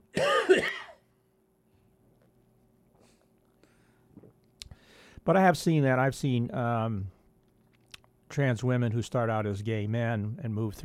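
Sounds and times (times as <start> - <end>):
short rough cough: 0.1 - 1.1
speech: 5.2 - 7.2, 8.4 - 10.8.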